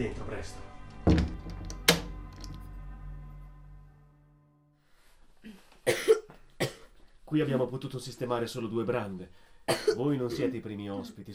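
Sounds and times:
speech: 0.0 - 1.2, 7.3 - 11.3
harsh raspy coughs: 5.8 - 7.0, 9.7 - 10.7.

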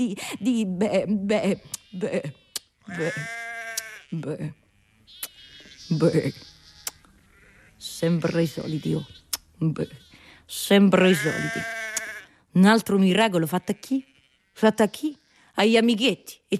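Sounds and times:
speech: 0.0 - 3.4, 4.1 - 5.3, 5.9 - 6.5, 7.8 - 11.9, 12.5 - 16.5
sheep bleating: 1.5 - 9.3, 11.0 - 12.4, 13.3 - 15.5.

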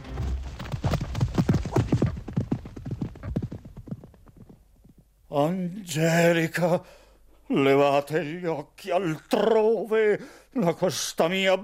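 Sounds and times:
horse galloping off, hoofbeats: 0.0 - 5.1
speech: 5.3 - 11.6.

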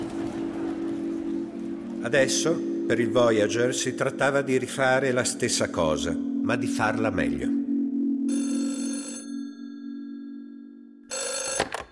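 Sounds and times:
steady low hum: 0.0 - 11.1
speech: 2.0 - 7.6
telephone bell ringing for an incoming call: 8.3 - 11.8.

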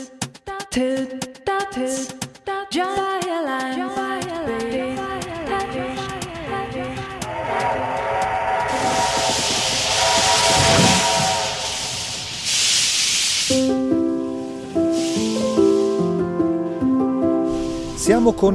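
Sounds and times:
speech: 0.7 - 4.0, 18.2 - 18.5
steam train chuffing: 4.2 - 13.9, 14.8 - 16.2
steam train venting steam in hissing bursts: 4.6 - 16.4, 17.5 - 18.3
sustained multi-tone steam train whistle: 7.1 - 13.9, 14.9 - 16.2.

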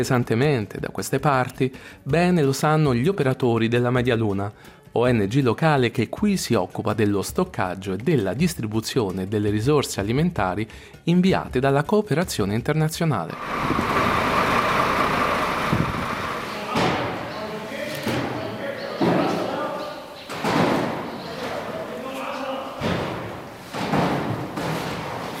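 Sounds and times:
speech: 0.0 - 14.0
workers' voices calling and talking: 13.3 - 25.3
steady rumble: 13.4 - 17.3
heavy thuds and slams of truck being unloaded: 22.8 - 25.3.

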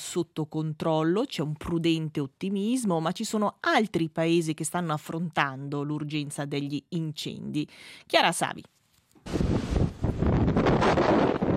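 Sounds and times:
speech: 0.0 - 9.7
strong gusting wind on an island buffeting the microphone: 9.3 - 11.5.

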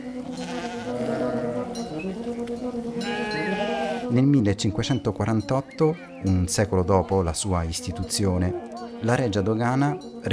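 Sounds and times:
flock of sheep bleating: 0.3 - 2.0, 3.0 - 4.1
speech: 4.1 - 10.3.

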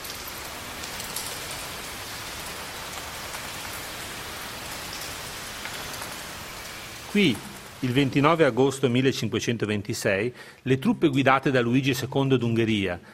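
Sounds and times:
heavy rain pouring and striking surfaces: 0.0 - 9.2
speech: 7.1 - 13.1.

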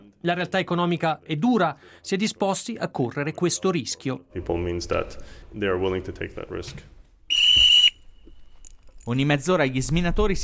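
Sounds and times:
speech: 0.2 - 7.0, 9.0 - 10.4
whistle blast announcing a break: 7.3 - 8.2.

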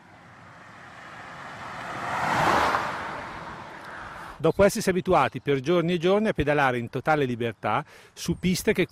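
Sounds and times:
car passing by on a road: 0.0 - 4.4
steady traffic hiss: 0.0 - 4.5
speech: 4.4 - 8.9.

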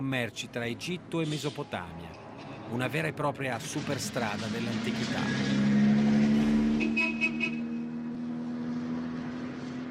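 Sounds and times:
speech: 0.0 - 5.8
road traffic of local cars in Galilee: 0.0 - 9.8
car horn toots: 6.7 - 7.8.

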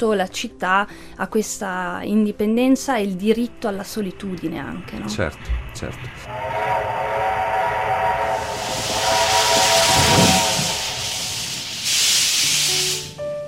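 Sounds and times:
speech: 0.0 - 6.8
steam train steam hissing: 5.1 - 13.3
steam train whistle: 6.2 - 13.2.

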